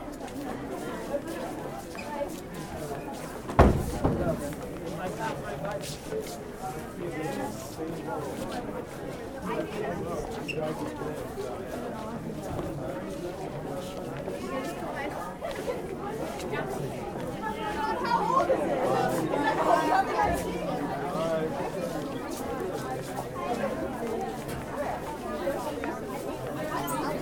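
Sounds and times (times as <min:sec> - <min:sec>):
lobby ambience: 0:00.0 - 0:27.2.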